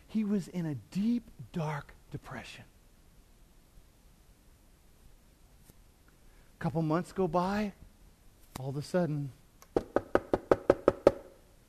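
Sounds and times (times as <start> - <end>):
speech: 0.1 - 2.8, 6.6 - 7.8, 8.6 - 9.9
sharp knocks on a wooden door: 9.8 - 11.3.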